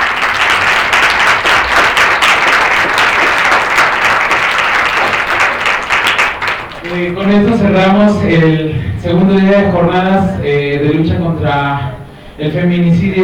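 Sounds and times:
audience applauding at the close of a day of talks at a university campus: 0:00.0 - 0:07.5
speech: 0:07.0 - 0:13.2.

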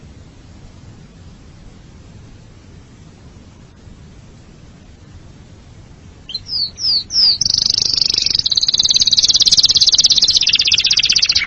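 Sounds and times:
canary giving descending whistled slurs and rapid high trill: 0:06.3 - 0:11.4.

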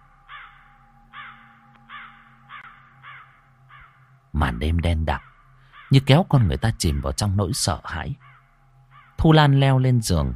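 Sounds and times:
crows cawing at night: 0:00.0 - 0:04.3, 0:05.1 - 0:06.1, 0:08.0 - 0:09.2
steady low hum: 0:00.0 - 0:10.3
speech: 0:04.4 - 0:05.3, 0:05.9 - 0:08.3, 0:09.2 - 0:10.3.

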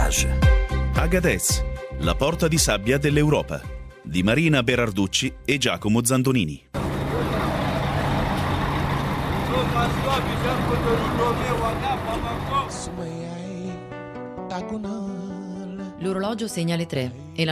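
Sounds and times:
speech: 0:00.1 - 0:00.4, 0:01.0 - 0:06.8, 0:09.6 - 0:13.5, 0:14.5 - 0:15.3, 0:16.0 - 0:17.5
murmuring voices: 0:06.8 - 0:12.9
bus engines rumbling at a crowded night bus station in Agadez: 0:06.8 - 0:13.1
traffic noise: 0:06.8 - 0:13.1.

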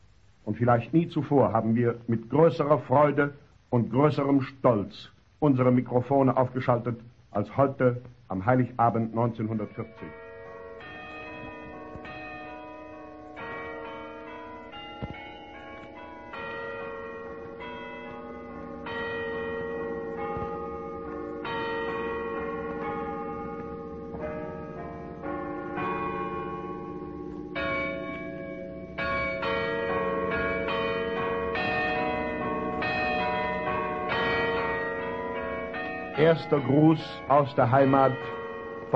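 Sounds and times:
speech: 0:00.6 - 0:10.2, 0:36.4 - 0:38.9
carillon bells in the tower of the old garrison church in Potsdam: 0:09.7 - 0:38.9.

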